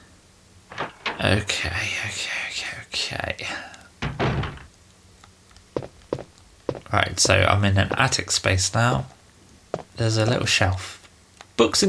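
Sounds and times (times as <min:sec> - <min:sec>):
speech: 0:01.2 - 0:03.8, 0:06.9 - 0:09.2, 0:10.0 - 0:11.0, 0:11.6 - 0:11.8
door opening with heavy thunks in a video game: 0:04.0 - 0:04.7.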